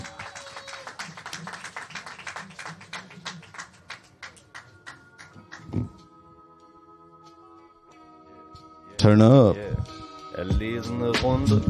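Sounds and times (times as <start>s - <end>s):
audience clapping: 0.0s - 5.8s
speech: 9.0s - 11.6s.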